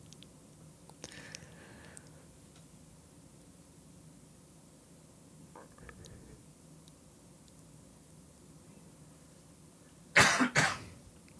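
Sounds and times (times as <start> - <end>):
man coughing: 10.2 - 10.9.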